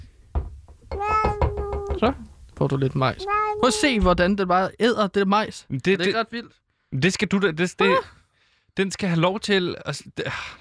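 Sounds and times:
soft thuds: 0:00.3 - 0:02.3
cat meowing: 0:00.9 - 0:02.2, 0:03.2 - 0:04.0
speech: 0:02.0 - 0:08.2, 0:08.8 - 0:10.5.

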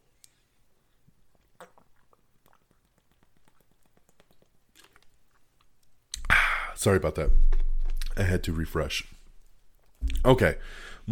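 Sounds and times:
quiet low hum: 0:00.0 - 0:11.1
person drinking water with gulps and mouth clicks: 0:00.9 - 0:06.7
speech: 0:06.8 - 0:07.5, 0:08.2 - 0:09.2, 0:10.2 - 0:11.1.

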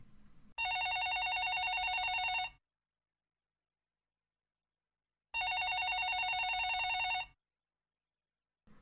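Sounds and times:
telephone bell ringing: 0:00.6 - 0:02.6, 0:05.4 - 0:07.4.

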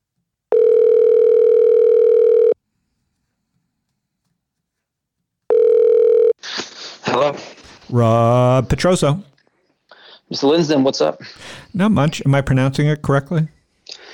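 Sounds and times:
telephone dial tone: 0:00.5 - 0:02.6, 0:05.5 - 0:06.4
speech: 0:07.2 - 0:09.3, 0:10.3 - 0:13.6.

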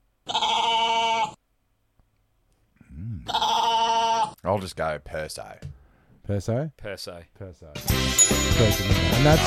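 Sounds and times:
goat bleating: 0:00.3 - 0:01.4, 0:03.2 - 0:04.4
speech: 0:04.4 - 0:09.4.

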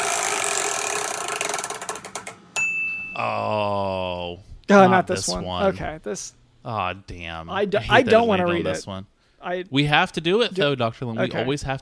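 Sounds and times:
spinner wheel spinning with rapid ratcheting clicks: 0:00.0 - 0:02.4
bright ding: 0:02.6 - 0:03.2
sustained ringing chime: 0:02.6 - 0:03.2
speech: 0:04.7 - 0:11.7.

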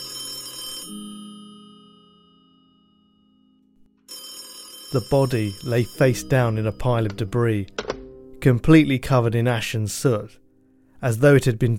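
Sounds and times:
telephone ringing with a harsh buzzing burst: 0:00.0 - 0:07.9
speech: 0:04.9 - 0:07.8, 0:08.4 - 0:10.4, 0:11.0 - 0:11.7.

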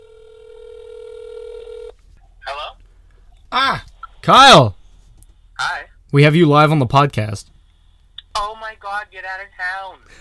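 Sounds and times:
electronic telephone tone as a call is placed: 0:00.0 - 0:01.9
speech: 0:03.5 - 0:04.8, 0:06.1 - 0:07.5, 0:08.4 - 0:10.1.

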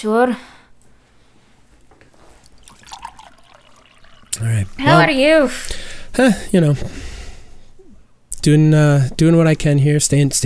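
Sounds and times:
speech: 0:00.0 - 0:00.6, 0:04.4 - 0:07.1, 0:08.4 - 0:10.4
water pouring into a glass: 0:02.4 - 0:05.0.

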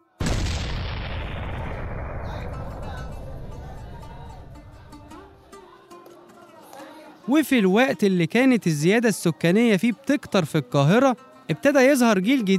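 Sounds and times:
Ramadan cannon firing from a palace in the Abbasiya district of Cairo Egypt: 0:00.2 - 0:05.1
long rumbling echo of cannon shot: 0:00.2 - 0:05.4
speech: 0:07.3 - 0:12.5.

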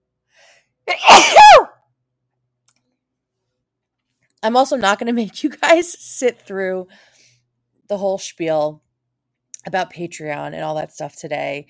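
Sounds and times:
person sneezing: 0:00.9 - 0:01.7
speech: 0:04.4 - 0:07.1, 0:07.9 - 0:08.8, 0:09.6 - 0:11.6.

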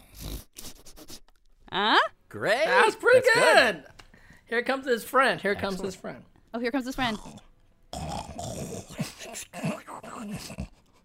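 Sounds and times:
person imitating snorts: 0:00.0 - 0:01.2, 0:07.1 - 0:11.0
speech: 0:01.8 - 0:03.9, 0:04.5 - 0:07.4
person imitating snoring using the soft palate: 0:07.0 - 0:10.8.

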